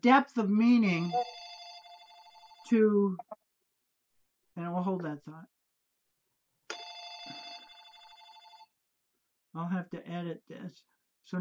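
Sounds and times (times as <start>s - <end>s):
speech: 0.0s - 1.4s, 2.6s - 3.4s, 4.6s - 5.6s, 9.5s - 11.3s
telephone bell ringing: 1.0s - 2.8s, 6.7s - 8.7s.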